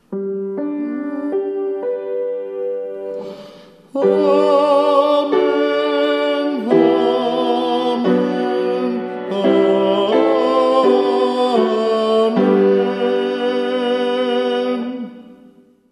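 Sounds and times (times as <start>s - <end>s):
tenor singing Amen: 0.4s - 15.8s
choir singing a threefold Amen: 4.0s - 15.2s.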